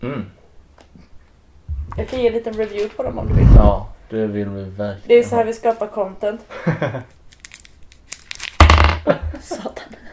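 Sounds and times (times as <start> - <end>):
speech: 0.0 - 0.4, 2.0 - 7.2, 9.0 - 9.8
laughter: 6.5 - 7.1
paper candy wrapper crinkling: 7.1 - 8.7.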